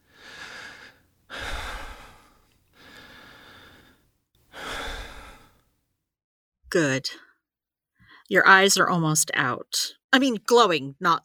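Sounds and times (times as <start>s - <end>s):
slow deep relaxation breathing: 0.0s - 5.6s
speech: 6.7s - 7.3s, 8.3s - 11.2s.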